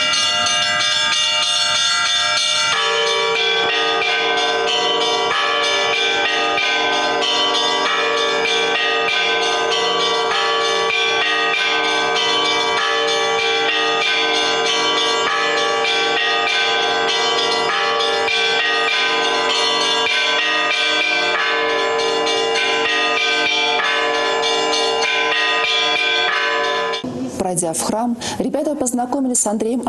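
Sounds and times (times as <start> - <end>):
church bells rung by a bell-ringer: 0.0 - 27.1
speech: 27.7 - 29.8.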